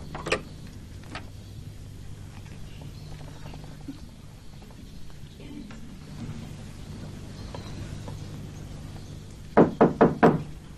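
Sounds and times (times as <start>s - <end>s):
faint low hum: 0.0s - 10.7s
firm knocking on a door: 9.6s - 10.5s.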